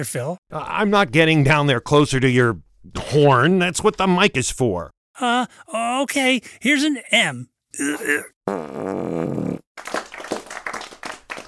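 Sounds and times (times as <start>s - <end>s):
speech: 0.0s - 10.0s
fart noises: 7.8s - 9.7s.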